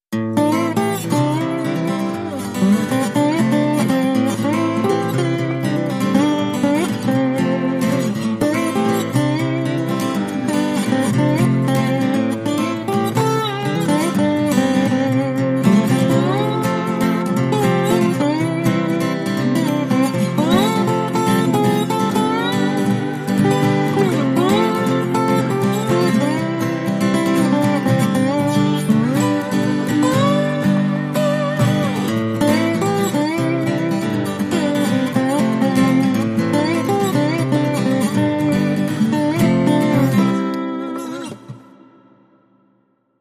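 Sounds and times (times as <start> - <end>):
happy music without drums and bass: 0.9 - 42.2.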